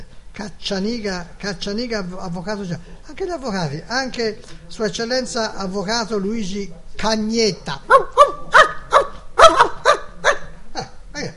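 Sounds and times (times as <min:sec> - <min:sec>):
speech: 0:00.4 - 0:08.2
dog barking: 0:07.9 - 0:10.5.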